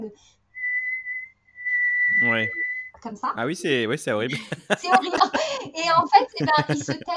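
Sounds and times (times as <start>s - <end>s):
speech: 0.1s - 0.4s, 2.2s - 7.1s
person whistling one long shrill note at a steady high pitch: 0.6s - 2.9s
laughter: 2.2s - 2.5s, 3.4s - 7.1s.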